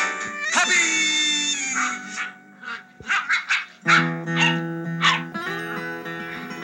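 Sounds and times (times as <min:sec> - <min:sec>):
Old English sheepdog puppies yipping and barking: 0:00.0 - 0:05.5
Old English sheepdog puppies squealing and whimpering: 0:00.4 - 0:05.3.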